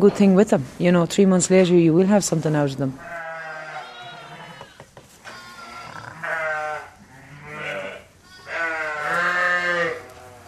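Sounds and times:
speech: 0:00.0 - 0:03.2
ewes and lambs bleating in a sheep shed during lambing season: 0:03.0 - 0:10.4.

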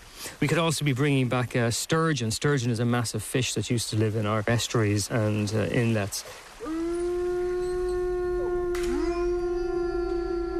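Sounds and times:
speech: 0:00.4 - 0:06.4
wolf howling: 0:06.6 - 0:10.5.

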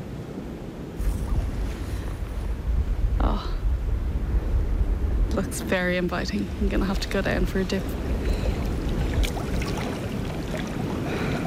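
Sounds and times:
sea waves washing on a beach: 0:00.0 - 0:11.4
surf hiss: 0:00.0 - 0:11.4
wind rumble on a beach after rain: 0:00.0 - 0:11.4
speech: 0:05.4 - 0:08.1.

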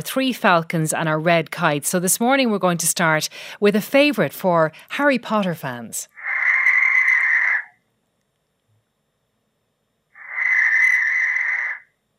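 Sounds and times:
speech: 0:00.0 - 0:06.2
barn owl screeching: 0:06.1 - 0:07.8, 0:10.2 - 0:12.0.

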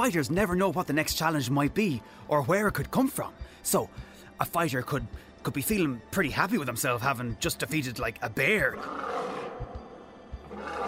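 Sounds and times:
speech: 0:00.0 - 0:09.7
lion roaring in a gladiator arena: 0:08.7 - 0:10.8.

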